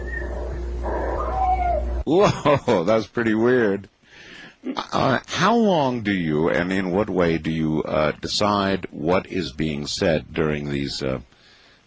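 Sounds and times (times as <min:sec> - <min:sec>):
thin steady whistle-like tone: 0:00.0 - 0:01.3
cat meowing: 0:00.9 - 0:02.0
speech: 0:02.1 - 0:11.4.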